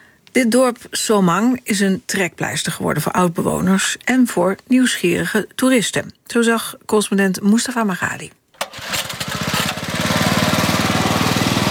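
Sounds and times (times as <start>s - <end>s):
speech: 0.4s - 8.9s
small outboard motor on a bamboo raft being pull-started and chugging: 8.6s - 11.6s.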